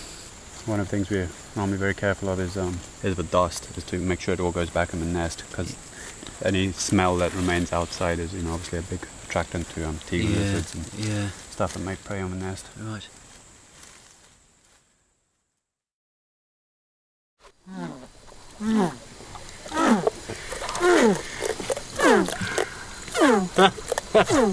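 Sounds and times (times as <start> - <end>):
steady hiss: 0.0 - 15.4, 17.4 - 24.5
speech: 0.7 - 13.2, 18.6 - 19.0, 23.6 - 24.5
red-tailed catfish grunting: 17.7 - 24.5.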